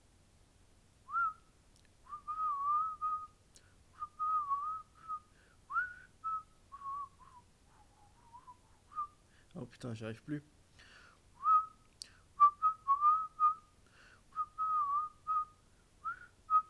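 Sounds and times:
person whistling a tune while arriving: 0:01.1 - 0:01.4, 0:02.1 - 0:03.4, 0:04.0 - 0:07.5, 0:08.2 - 0:09.2, 0:11.4 - 0:11.8, 0:12.4 - 0:13.7, 0:14.4 - 0:16.6
speech: 0:09.7 - 0:10.6.

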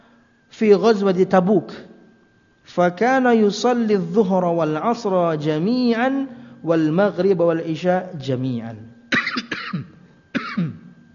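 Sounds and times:
speech: 0:00.6 - 0:01.9, 0:02.7 - 0:09.0
man giving a religious lecture coughing: 0:09.1 - 0:10.9.

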